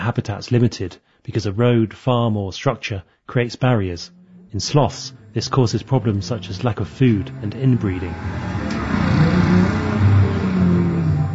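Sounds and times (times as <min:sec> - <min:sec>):
speech: 0:00.0 - 0:09.5
cars and ATVs driving past on a road next to beach bars in Puerto Viejo: 0:04.0 - 0:11.3.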